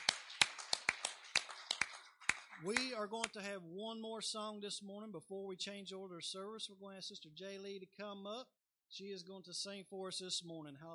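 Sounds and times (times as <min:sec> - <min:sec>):
small group clapping during a worship service: 0:00.0 - 0:03.4
speech: 0:02.6 - 0:10.9.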